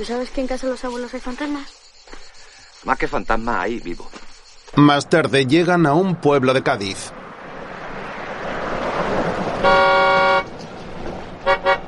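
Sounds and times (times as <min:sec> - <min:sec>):
speech: 0:00.0 - 0:01.8, 0:02.8 - 0:07.2, 0:09.6 - 0:10.2
low traffic noise: 0:00.0 - 0:11.8
car horn honking while turning a corner in narrow town streets in Cádiz: 0:09.5 - 0:10.6, 0:11.4 - 0:11.8.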